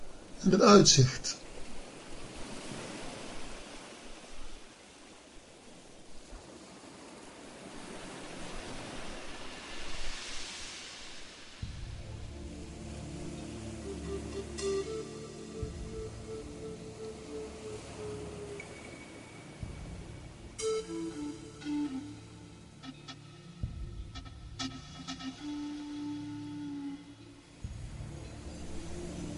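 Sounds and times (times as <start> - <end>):
ocean waves washing onto a beach: 0.0 - 29.3
speech: 0.4 - 1.4
soft instrumental music: 11.6 - 29.3.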